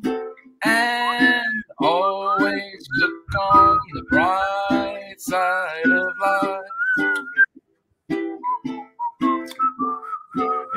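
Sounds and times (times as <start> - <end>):
person whistling a cheerful melody: 0.7 - 7.5, 8.3 - 10.7
low humming or vocal tones: 2.9 - 4.9.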